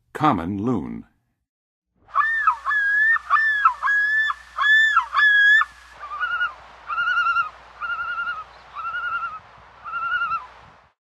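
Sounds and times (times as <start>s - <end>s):
common loon calling in the Western USA: 2.1s - 10.8s.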